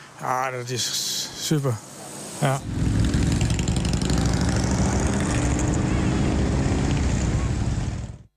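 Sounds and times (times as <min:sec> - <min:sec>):
speech: 0:00.2 - 0:02.9
large group of motorcycles riding and revving: 0:02.4 - 0:08.3.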